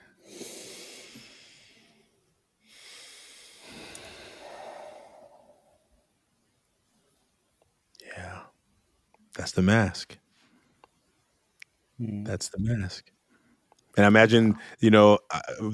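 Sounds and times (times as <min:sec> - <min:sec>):
group taking a deep breath together: 0:00.1 - 0:02.1, 0:02.7 - 0:06.0
speech: 0:09.4 - 0:10.2, 0:12.0 - 0:13.2, 0:14.0 - 0:15.7.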